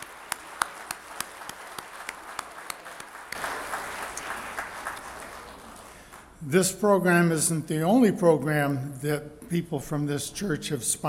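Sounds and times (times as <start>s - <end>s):
crowd applauding: 0.0s - 6.4s
speech: 6.4s - 11.0s.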